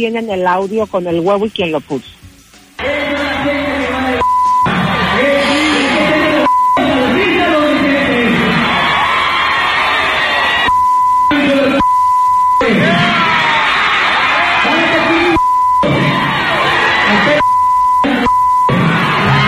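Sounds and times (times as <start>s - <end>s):
speech: 0.0s - 2.2s
people arguing with insults in a heated argument: 2.8s - 11.9s, 12.5s - 19.4s
loud chaotic crowd shouting and cheering at a palenque: 2.8s - 19.4s
steady high-pitched censor bleeps: 4.2s - 4.8s, 5.4s - 7.5s, 10.6s - 13.1s, 15.2s - 16.1s, 17.1s - 19.4s.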